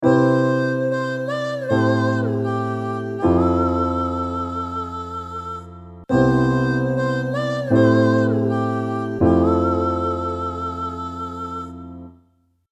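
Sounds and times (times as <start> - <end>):
pop vocal chords: 0.0 - 12.2.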